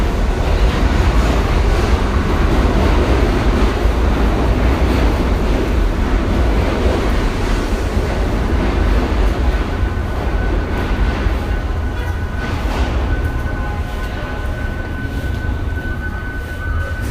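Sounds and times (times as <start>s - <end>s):
train running in a subway station: 0.0s - 17.1s.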